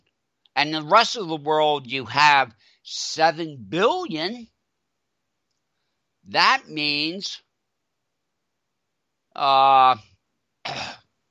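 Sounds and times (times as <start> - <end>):
speech: 0.6 - 4.5, 6.3 - 7.4, 9.4 - 11.0
person giving a single brief breathy cough: 10.7 - 11.1
person throat clearing: 10.7 - 11.1.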